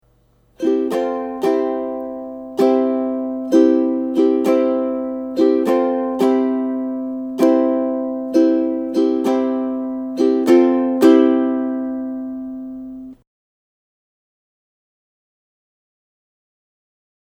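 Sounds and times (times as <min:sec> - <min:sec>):
ukulele strumming: 0:00.3 - 0:13.2.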